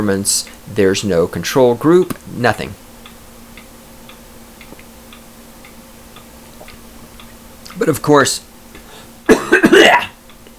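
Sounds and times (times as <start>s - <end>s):
speech: 0.0s - 2.8s, 7.8s - 8.5s
person faking a harsh smoker's cough: 9.3s - 10.2s.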